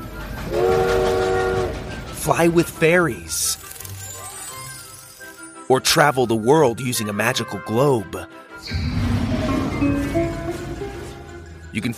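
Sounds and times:
train rumbling: 0:00.0 - 0:03.3, 0:08.7 - 0:11.8
train horn blast: 0:00.4 - 0:01.8
speech: 0:02.3 - 0:03.6, 0:05.7 - 0:09.0, 0:11.8 - 0:11.9.

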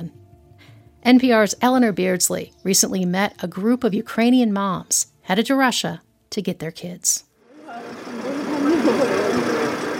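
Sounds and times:
speech: 0:01.0 - 0:07.9
bus engine idling in Kyiv Ukraine: 0:07.5 - 0:09.9
indistinct voices of mothers murmuring: 0:07.6 - 0:09.9.

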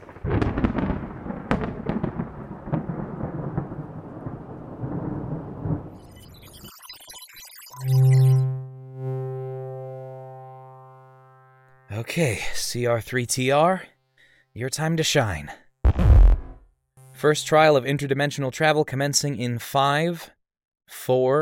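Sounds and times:
sharp crackling thunder claps: 0:00.0 - 0:06.0
steady rain: 0:00.0 - 0:06.0
glittery electronic shimmer: 0:06.0 - 0:11.8
loud sustained synth tone: 0:06.0 - 0:15.0, 0:16.1 - 0:18.0
speech: 0:12.0 - 0:13.9, 0:14.6 - 0:15.6, 0:17.2 - 0:21.3
low rumble: 0:15.9 - 0:16.6.

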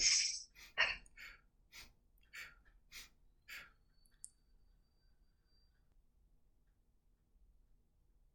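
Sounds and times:
breathing in through the nose and out through the mouth: 0:00.5 - 0:05.9.

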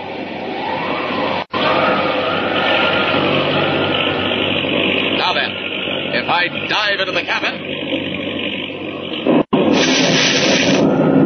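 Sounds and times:
heavy roaring rumble: 0:00.0 - 0:11.2
lightning bolt striking a seaplane: 0:09.3 - 0:11.2.

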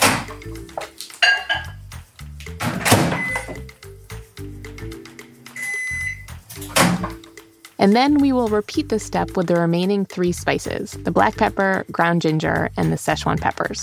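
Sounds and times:
microwave oven door thunks: 0:00.0 - 0:00.4, 0:02.6 - 0:03.6, 0:06.6 - 0:07.2
microwave oven high-pitched beeps: 0:03.2 - 0:03.6, 0:05.6 - 0:06.3
speech: 0:07.8 - 0:13.8.

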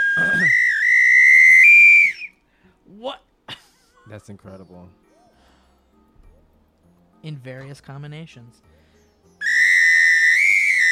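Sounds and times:
shrill samba whistle with several holes blown in a sustained blast: 0:00.0 - 0:02.4, 0:09.4 - 0:10.9
speech: 0:04.1 - 0:05.1, 0:07.2 - 0:08.8.

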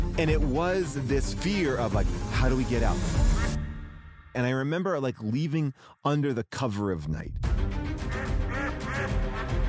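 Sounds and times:
speech: 0:00.2 - 0:03.6, 0:04.4 - 0:07.8
hotel guard ducks quacking: 0:08.1 - 0:09.6.

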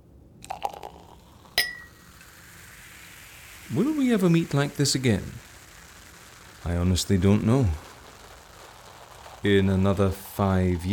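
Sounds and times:
champagne glasses clinking in a toast: 0:01.6 - 0:02.0
speech: 0:03.7 - 0:05.5, 0:06.6 - 0:07.8, 0:09.4 - 0:10.9.

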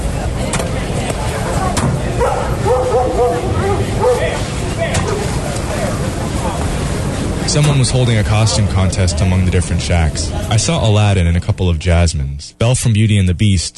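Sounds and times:
crowd chatter: 0:00.0 - 0:12.0
dog barking and yipping: 0:02.2 - 0:04.4
speech: 0:07.5 - 0:13.7.

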